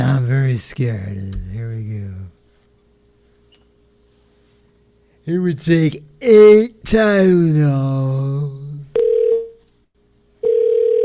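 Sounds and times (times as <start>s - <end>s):
speech: 0.6s - 2.4s, 5.3s - 8.6s
telephone busy signal with mid-pitched tone bursts: 10.4s - 11.0s.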